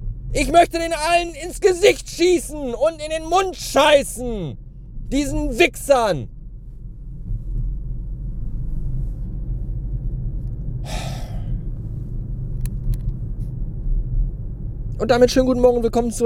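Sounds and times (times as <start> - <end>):
car driving on the A31 motorway at around 280 km/h: 0.0 - 16.2
speech: 0.3 - 6.4, 15.0 - 16.2
sharp breathy gasp: 10.9 - 11.5.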